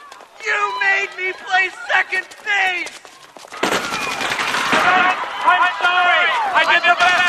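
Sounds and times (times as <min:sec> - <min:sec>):
speech: 0:00.4 - 0:03.8, 0:04.8 - 0:07.2
rifle gunfire in rapid bursts: 0:03.6 - 0:05.0.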